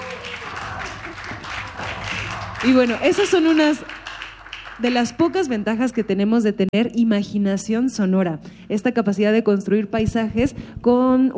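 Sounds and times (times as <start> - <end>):
group clapping: 0.0 - 6.2
speech: 2.6 - 3.9, 4.8 - 11.3.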